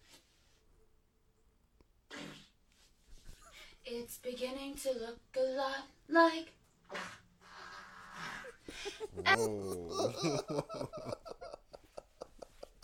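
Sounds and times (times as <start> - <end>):
short loud fart: 2.1 - 2.6, 6.9 - 8.5
speech: 3.9 - 6.6, 9.2 - 11.2
laughter: 8.4 - 12.8
person singing a holiday tune in a strained buzzy way: 9.2 - 10.9.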